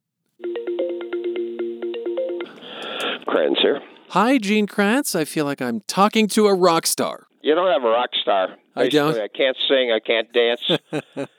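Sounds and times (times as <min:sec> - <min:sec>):
telephone ringing with an electronic trill: 0:00.4 - 0:03.1
speech: 0:03.4 - 0:11.3
laughter: 0:10.5 - 0:11.3.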